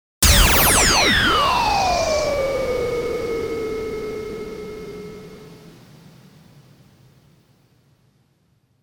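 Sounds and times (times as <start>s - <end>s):
howling button impact: 0.2s - 5.4s.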